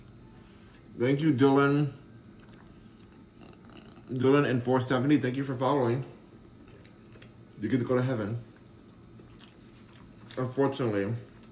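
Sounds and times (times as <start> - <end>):
speech: 1.0 - 2.0, 4.1 - 6.2, 7.6 - 8.5, 10.4 - 11.3
wet chewing of a chili cheese dog: 2.2 - 4.5, 6.2 - 7.6, 8.4 - 11.4.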